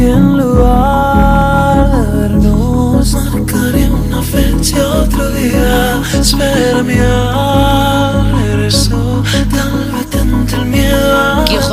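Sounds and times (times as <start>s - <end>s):
newly released song playing: 0.0s - 11.7s.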